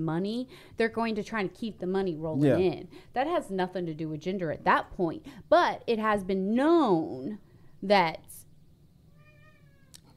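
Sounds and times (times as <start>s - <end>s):
speech: 0.0s - 8.4s
cat meowing: 9.1s - 10.0s.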